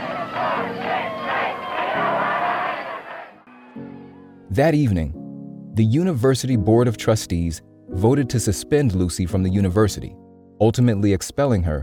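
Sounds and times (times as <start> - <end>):
angry crowd of protesters rioting at a university shouting and yelling: 0.0 - 4.4
speech: 4.6 - 5.2, 5.8 - 11.8.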